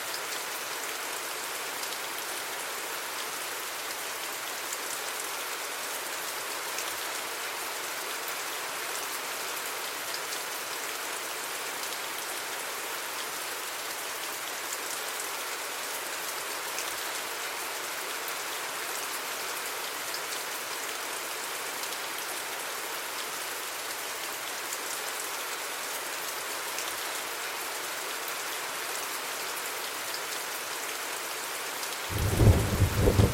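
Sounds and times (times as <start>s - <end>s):
steady dense rain: 0.0s - 33.3s
low rumble of thunder: 32.1s - 33.3s.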